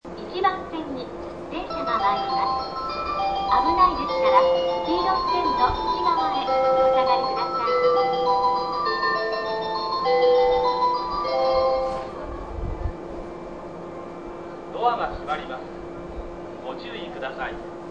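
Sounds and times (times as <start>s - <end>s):
Kawasaki station bell: 1.5s - 14.8s.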